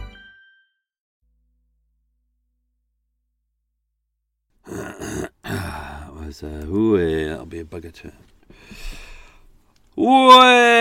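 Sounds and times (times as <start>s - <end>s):
loud drawn-out voiced yawn: 4.6s - 6.2s
speech: 6.3s - 9.0s, 10.0s - 10.7s.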